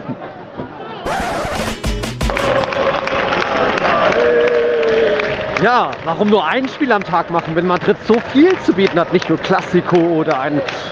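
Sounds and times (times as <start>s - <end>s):
speech: 0.1s - 0.3s, 5.6s - 10.9s
football stadium crowd cheering at the final whistle: 0.1s - 10.9s
heavy thumps: 1.1s - 2.7s.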